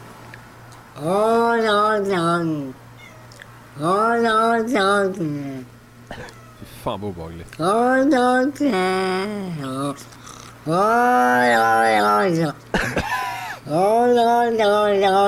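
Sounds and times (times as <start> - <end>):
speech: 1.0 - 2.8, 3.8 - 13.0, 13.7 - 15.2
cat wailing with moaning meows: 3.0 - 3.4, 6.1 - 6.8, 10.7 - 12.4.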